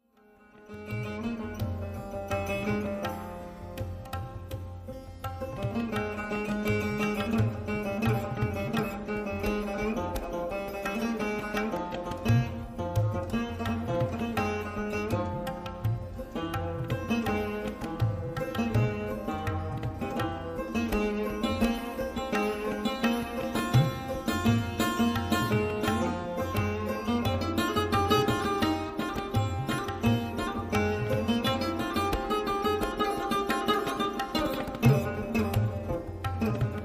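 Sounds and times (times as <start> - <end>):
Misra theka tabla rhythm: 0.0 - 36.8.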